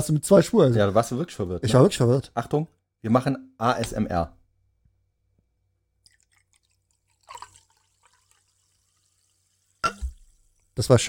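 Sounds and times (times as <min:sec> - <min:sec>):
speech: 0:00.0 - 0:04.4, 0:10.8 - 0:11.0
carbonated drink fizzing in a glass: 0:06.0 - 0:10.8
carbonated drink pouring splash into a glass: 0:06.0 - 0:10.8.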